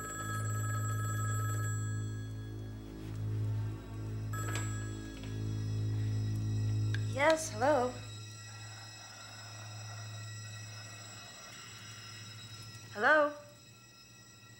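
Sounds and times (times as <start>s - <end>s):
telephone bell ringing: 0.0s - 3.0s, 4.2s - 14.5s
low humming undertone: 0.0s - 14.5s
speech: 7.2s - 8.0s.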